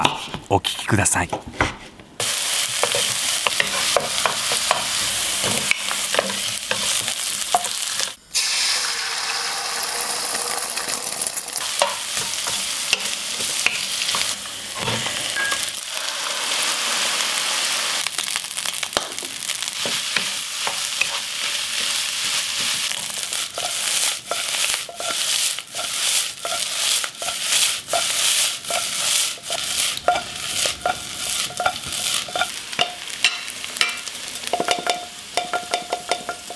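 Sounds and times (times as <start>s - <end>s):
speech: 0.0s - 1.8s
fried rice with fresh lettuce stir-frying in a hot pan: 2.2s - 36.5s
spatula scraping and tossing rice in a pan: 2.6s - 8.0s, 19.8s - 33.4s.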